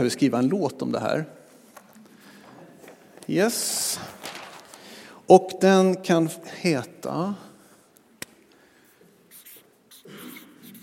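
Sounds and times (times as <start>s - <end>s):
speech: 0.0s - 1.4s, 3.3s - 4.3s, 5.3s - 7.5s
pen writing in large letters on a paper notepad: 9.3s - 10.8s.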